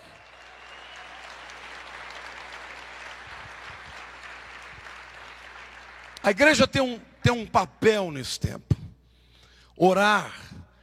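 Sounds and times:
church audience applauding: 0.0s - 6.7s
speech: 6.2s - 8.7s, 9.8s - 10.5s.

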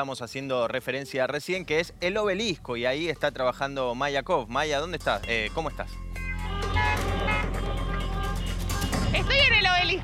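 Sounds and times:
speech: 0.0s - 6.0s
constant low rumble of traffic: 1.4s - 10.0s
car and motorbike horns blaring at a street protest: 6.2s - 10.0s
crowd voices at a street protest: 6.4s - 9.6s.

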